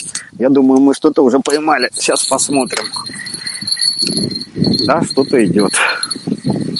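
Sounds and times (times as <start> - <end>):
speech: 0.4 - 6.7
horses hooves thudding and shuffling: 1.5 - 6.7.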